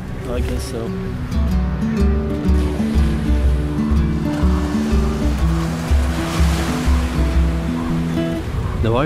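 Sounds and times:
ocean waves breaking on the shore: 0.0s - 9.0s
speech: 0.3s - 2.2s, 8.8s - 9.0s.

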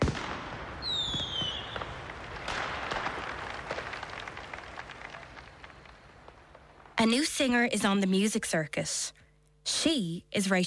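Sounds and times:
firework rocket whistling: 0.0s - 2.0s
crackle of small firework bursts and pops: 0.0s - 7.5s
speech: 7.0s - 10.6s.

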